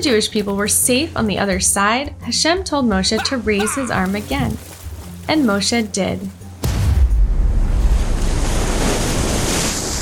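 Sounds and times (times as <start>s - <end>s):
speech: 0.0s - 4.7s, 5.3s - 6.4s
walls of water crashing down into the sea: 6.6s - 10.0s
windy hiss: 8.0s - 10.0s.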